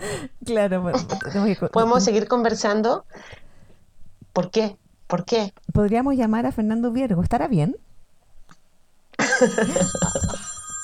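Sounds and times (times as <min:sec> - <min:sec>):
speech: 0:00.2 - 0:03.4, 0:04.4 - 0:07.9, 0:09.4 - 0:10.4
laughter: 0:09.2 - 0:10.5
old-fashioned telephone bell ringing: 0:09.2 - 0:10.8.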